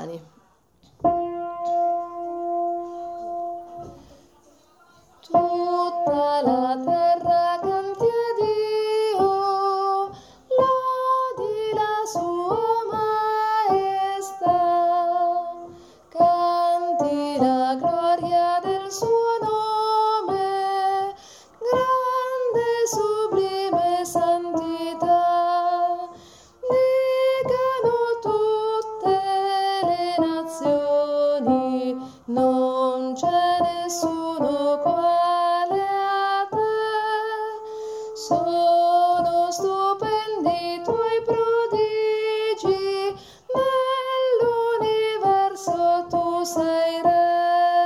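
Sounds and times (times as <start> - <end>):
sopranos singing: 1.0 - 37.5, 38.2 - 47.8.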